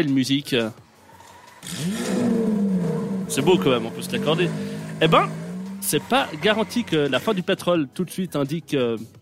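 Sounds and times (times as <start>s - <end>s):
speech: 0.0s - 0.8s, 1.6s - 2.3s, 3.3s - 9.2s
combustion car engine roaring and revving: 1.0s - 7.5s.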